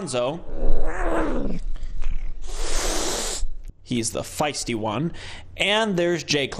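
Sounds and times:
speech: 0:00.0 - 0:01.7, 0:03.9 - 0:06.5
domestic cat yowling: 0:00.5 - 0:01.6
breathy hiss-like noise: 0:02.3 - 0:03.7.

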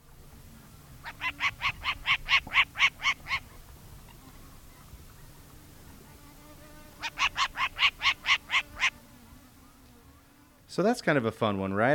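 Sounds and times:
short-eared owl raspy barking calls: 0:01.0 - 0:04.4, 0:06.9 - 0:10.6
speech: 0:10.8 - 0:11.9.

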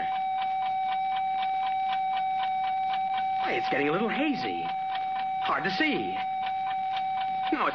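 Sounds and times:
clock ticking: 0:00.0 - 0:07.7
speech: 0:03.5 - 0:04.8, 0:05.4 - 0:06.4, 0:07.5 - 0:07.7.

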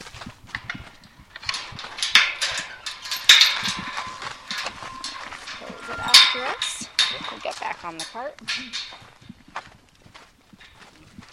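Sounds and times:
scraping and rustling: 0:00.0 - 0:09.4
horse hoof thuds: 0:00.0 - 0:11.3
large draft horses shuffling and moving: 0:00.0 - 0:11.3
speech: 0:07.9 - 0:09.2.

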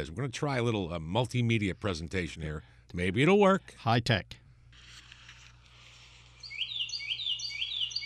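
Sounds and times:
speech: 0:00.0 - 0:04.4
Carolina wren singing ringing whistled phrases: 0:06.4 - 0:08.0.

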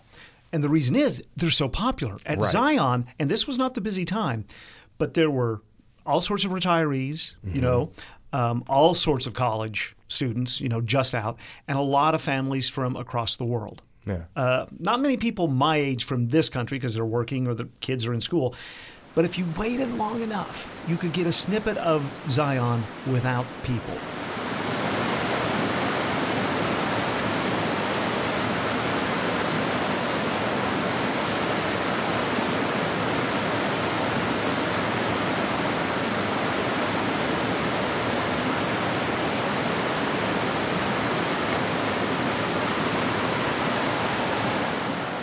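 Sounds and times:
speech: 0:00.5 - 0:24.2
Virgin River flowing in Zion: 0:18.8 - 0:45.2.

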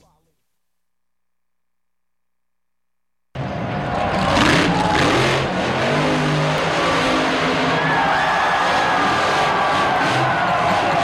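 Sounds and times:
monster truck engine revving at an arena show: 0:03.4 - 0:11.0.

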